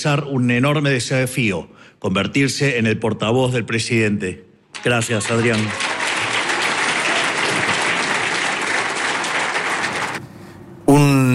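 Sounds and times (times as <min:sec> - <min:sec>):
speech: 0:00.0 - 0:05.9
crowd applauding with dense steady clapping: 0:04.8 - 0:10.2.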